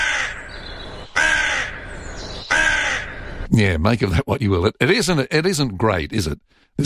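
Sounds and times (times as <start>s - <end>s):
crow cawing: 0.0s - 3.5s
speech: 3.6s - 6.8s.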